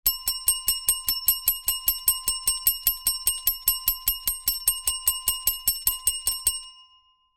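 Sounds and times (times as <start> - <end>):
rapid bell ringing: 0.1 - 7.1.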